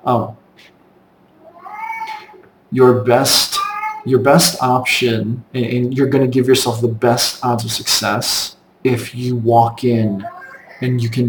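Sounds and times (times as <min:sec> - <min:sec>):
speech: 0:00.0 - 0:00.8, 0:02.7 - 0:11.2
cat meowing loudly: 0:01.4 - 0:02.4, 0:03.6 - 0:04.1, 0:10.2 - 0:10.9.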